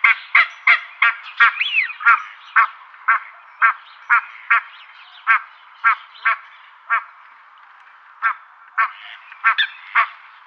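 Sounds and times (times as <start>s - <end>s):
barnacle goose calling: 0.0s - 7.2s, 8.2s - 10.4s
speech: 1.4s - 2.7s.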